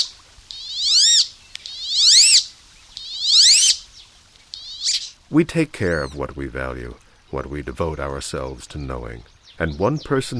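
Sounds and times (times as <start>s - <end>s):
wood duck squealed whistle calls: 0.0s - 3.8s, 4.5s - 5.2s
speech: 5.3s - 10.3s.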